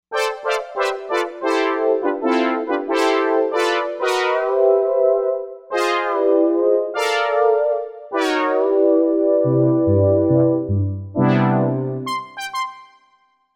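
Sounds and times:
brass: 0.1 - 13.2.

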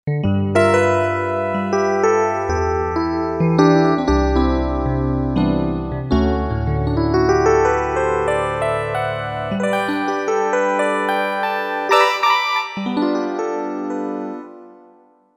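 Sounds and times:
Korg MSC-1S electric piano: 0.4 - 14.7.

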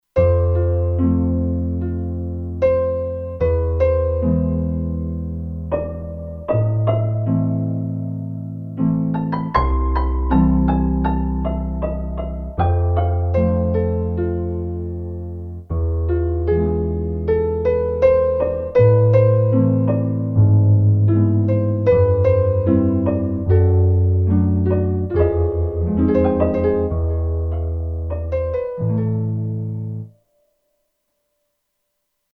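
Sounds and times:
dark piano on a Kurzweil K2500X synthesizer: 0.2 - 32.3.

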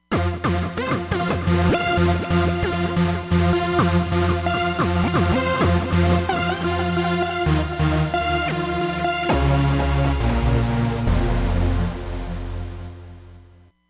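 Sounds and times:
trance music on a Roland Fantom XR synthesizer: 0.0 - 13.6.

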